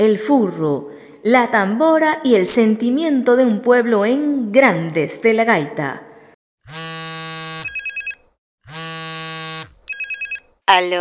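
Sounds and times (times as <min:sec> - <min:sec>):
speech: 0:00.0 - 0:06.0, 0:10.7 - 0:10.9
electronic telephone ringtone for an incoming call: 0:07.6 - 0:08.3, 0:09.9 - 0:10.5.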